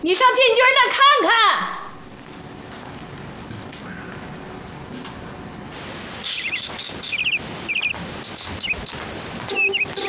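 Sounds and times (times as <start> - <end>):
speech: 0.0 - 1.8
caged bird chirping: 6.2 - 10.0.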